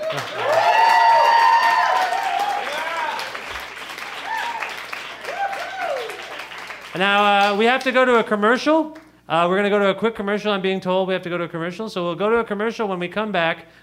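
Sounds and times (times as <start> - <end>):
audience whooping and cheering: 0.0 - 6.8
audience applause: 0.0 - 8.3
speech: 0.1 - 0.5, 7.0 - 13.8.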